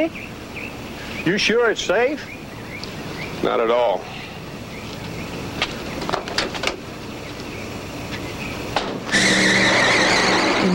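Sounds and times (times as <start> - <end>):
speech: 0.0 - 0.3, 1.2 - 2.4, 3.4 - 4.2
road noise: 0.0 - 10.7
car tires screeching to a halt: 9.0 - 10.7.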